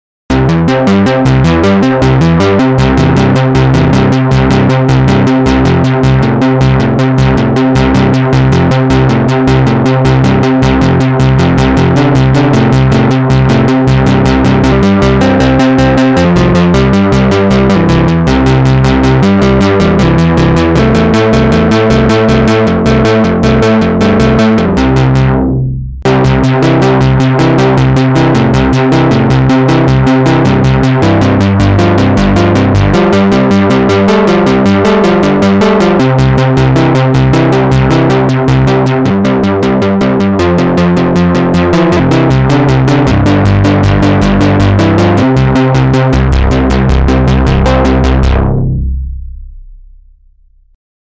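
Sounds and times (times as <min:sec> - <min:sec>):
synth arpeggio: 0:00.3 - 0:49.2.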